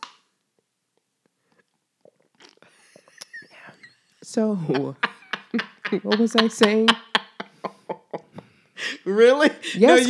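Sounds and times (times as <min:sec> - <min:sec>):
voice mimicking noisy slurping of a drink against the mic: 0:02.0 - 0:03.9
laughter: 0:02.8 - 0:10.0
speech: 0:04.3 - 0:07.1, 0:09.1 - 0:10.0.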